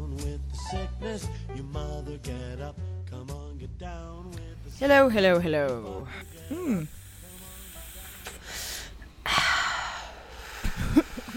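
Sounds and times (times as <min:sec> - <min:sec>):
speech: 0:00.7 - 0:07.0
short vocal gasp: 0:06.1 - 0:11.3
vaping exhale blown straight into a microphone: 0:06.1 - 0:11.3.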